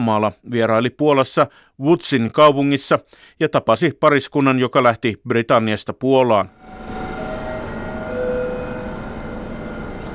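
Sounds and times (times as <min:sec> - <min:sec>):
speech: 0:00.0 - 0:07.0
Express Intercity passenger train rumbling in Poland: 0:06.6 - 0:10.1.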